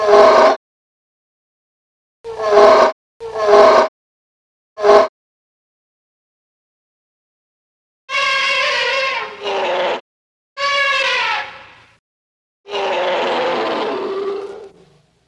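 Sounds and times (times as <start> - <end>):
elephant trumpeting: 0.0 - 0.5, 2.3 - 3.8, 8.1 - 10.0, 10.6 - 11.8, 12.7 - 15.0.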